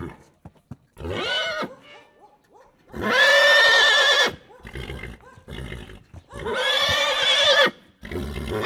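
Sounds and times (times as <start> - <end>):
excited stallion neighing in a farmyard: 3.0 - 4.4, 6.4 - 7.8.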